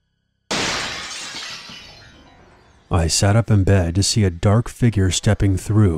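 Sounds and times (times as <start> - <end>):
window glass shattering with a loud bright crash: 0.5 - 2.9
speech: 2.9 - 5.9.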